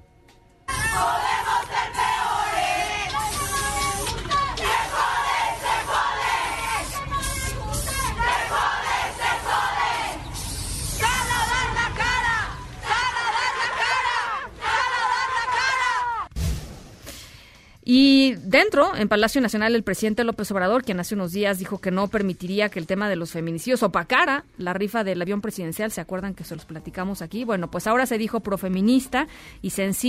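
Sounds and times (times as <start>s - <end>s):
large crowd of feminist protesters shouting and chanting: 0.7s - 7.0s, 7.8s - 10.4s, 11.0s - 16.3s
speech: 17.9s - 30.0s.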